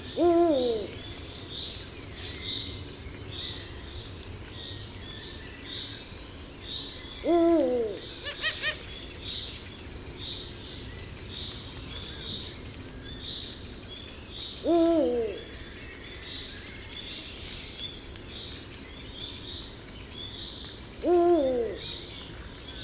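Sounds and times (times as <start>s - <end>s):
Bubo bubo calling: 0.1s - 1.0s, 7.2s - 8.9s, 14.6s - 15.6s, 21.0s - 21.8s.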